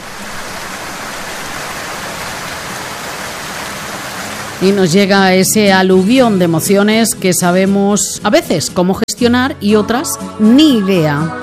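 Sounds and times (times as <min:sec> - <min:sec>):
steady rain pouring: 0:00.0 - 0:05.8
speech: 0:04.6 - 0:11.4.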